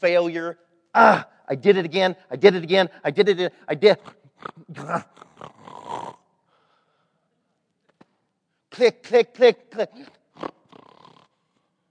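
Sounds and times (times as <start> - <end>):
speech: 0.0 - 5.6, 8.8 - 10.6
person imitating snoring with a snort and raspy breath: 4.0 - 6.3, 10.0 - 11.4.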